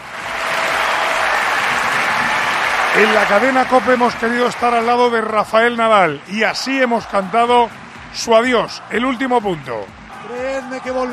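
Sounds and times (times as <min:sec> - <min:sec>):
standing crowd at a tennis court applauding: 0:00.0 - 0:11.1
speech: 0:03.0 - 0:11.1.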